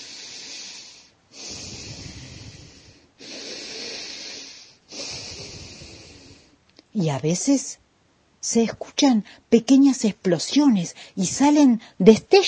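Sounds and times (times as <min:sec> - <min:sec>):
loud heavy breathing behind a door: 0:00.0 - 0:06.6
speech: 0:07.0 - 0:07.8, 0:08.4 - 0:12.4.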